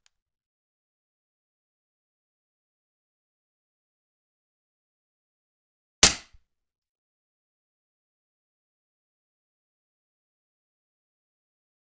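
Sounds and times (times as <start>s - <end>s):
Walther PPQ pistol: 6.1s - 6.4s.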